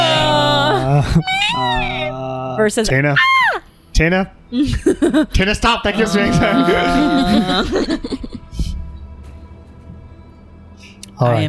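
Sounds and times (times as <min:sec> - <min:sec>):
person imitating a cat's groaning meow: 0:00.0 - 0:02.3, 0:06.0 - 0:07.7
speech: 0:01.1 - 0:08.3, 0:11.2 - 0:11.4
laughter: 0:04.6 - 0:08.6.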